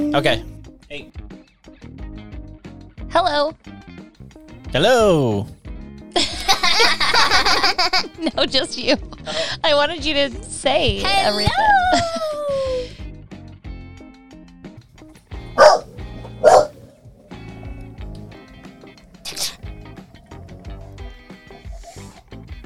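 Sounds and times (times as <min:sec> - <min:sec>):
speech: 0:00.0 - 0:01.2, 0:03.2 - 0:03.9, 0:04.7 - 0:05.6, 0:06.2 - 0:12.3
laughter: 0:06.2 - 0:08.5, 0:11.6 - 0:12.9
dog barking: 0:15.5 - 0:22.1.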